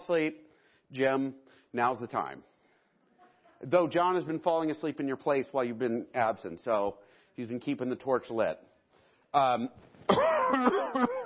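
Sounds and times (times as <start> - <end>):
speech: 0.1 - 2.5, 3.6 - 8.7, 9.3 - 11.2
person clearing throat: 10.1 - 11.2
person coughing: 10.1 - 11.2.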